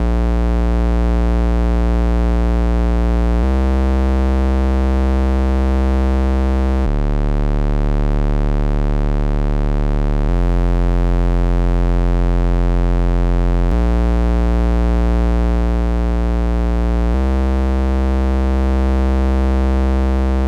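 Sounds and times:
140 BPM bass line in D minor: 0.0 - 20.4.

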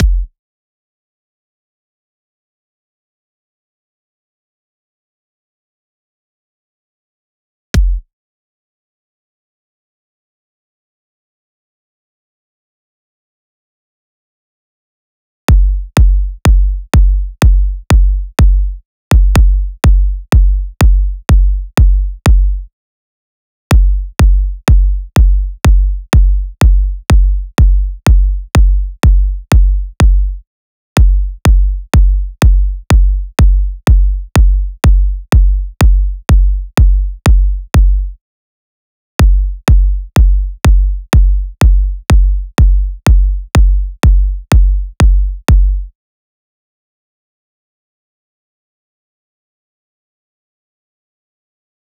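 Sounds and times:
future house kick drums: 0.0 - 0.3, 7.8 - 8.0, 15.5 - 22.6, 23.7 - 30.4, 31.0 - 38.1, 39.2 - 45.9.

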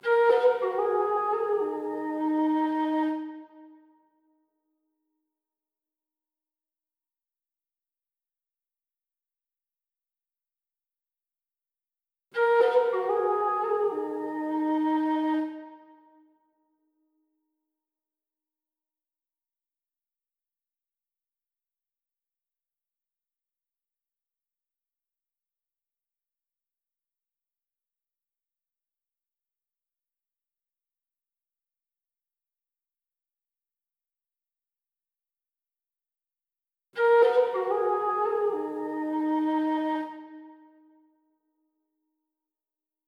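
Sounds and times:
flute melody in G sharp minor at 156 BPM: 0.0 - 3.6, 12.4 - 15.9, 37.0 - 40.8.

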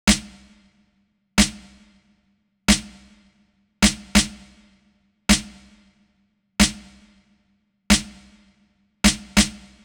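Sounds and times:
hip hop snare drum: 0.1 - 0.8, 1.4 - 2.0, 2.7 - 4.7, 5.3 - 5.9, 6.6 - 7.2, 7.9 - 9.8.

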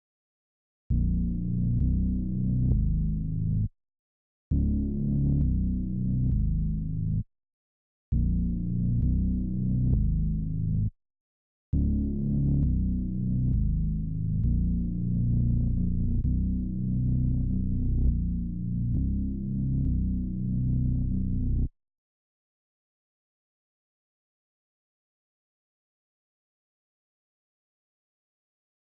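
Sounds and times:
bass line in D sharp minor: 0.9 - 3.7, 4.5 - 7.2, 8.2 - 10.9, 11.8 - 21.7.

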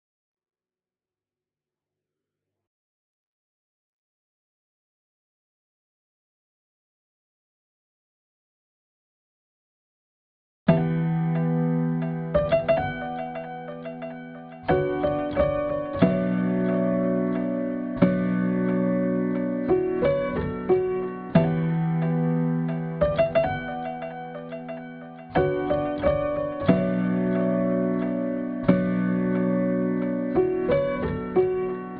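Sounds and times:
piano: 10.7 - 31.9.

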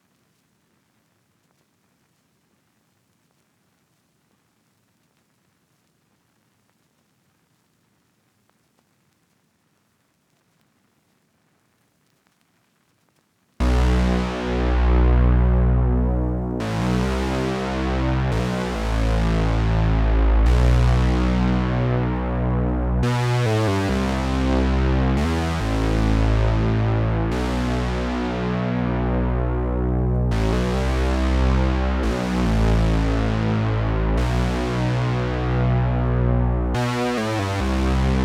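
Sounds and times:
bass line in B minor at 140 BPM: 13.6 - 38.2.

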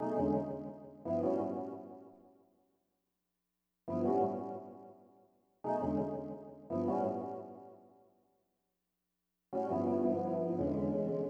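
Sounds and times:
electric piano: 0.0 - 2.0, 3.9 - 4.9, 5.7 - 7.8, 9.6 - 11.2.

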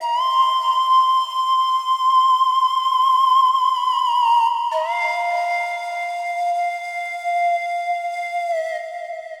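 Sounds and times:
pan flute in F minor: 0.0 - 9.3.

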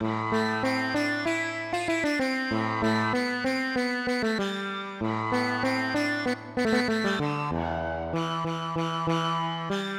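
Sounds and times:
sitar in hip hop exotica style: 0.0 - 9.9.

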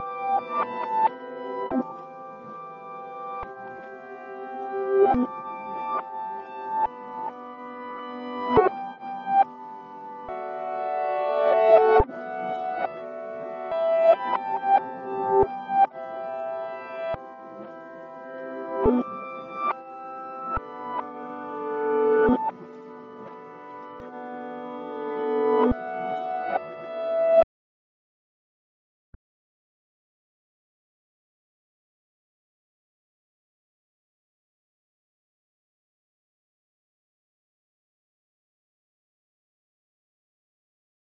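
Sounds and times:
piano in E minor: 0.0 - 27.5.

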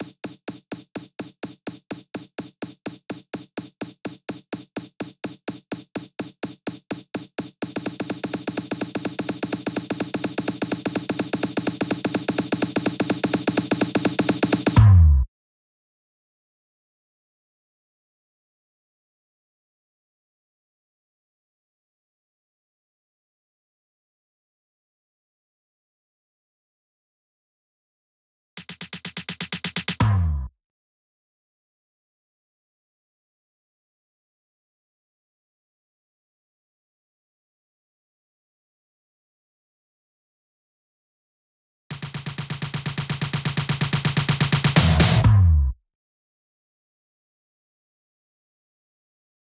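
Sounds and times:
Future House drum fills: 0.0 - 14.9, 28.6 - 30.2, 41.9 - 45.6.

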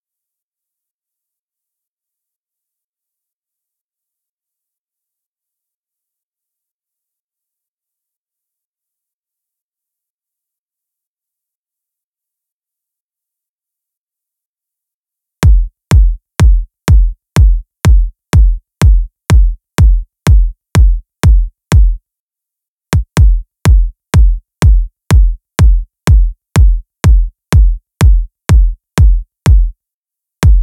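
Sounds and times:
future house kick drum: 15.4 - 22.0, 23.0 - 29.7, 30.4 - 30.6.

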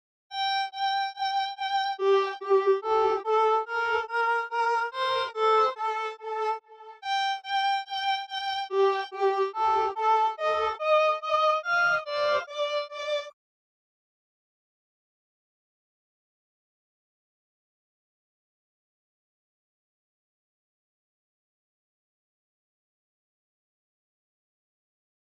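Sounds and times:
string instrument phrase in G minor at 143 BPM: 0.4 - 13.3.

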